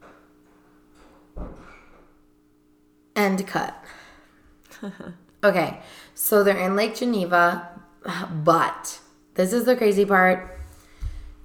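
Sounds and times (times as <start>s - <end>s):
steady room hum: 0.0s - 11.4s
door swinging shut with a muffled thud: 1.4s - 2.0s
speech: 3.2s - 4.0s, 4.8s - 10.6s.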